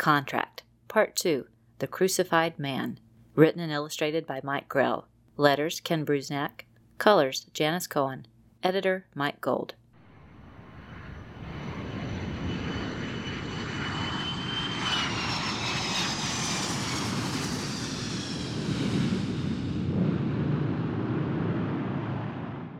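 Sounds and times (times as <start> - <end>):
speech: 0.0 - 9.8
passenger jet roaring overhead and touching down: 10.0 - 22.7.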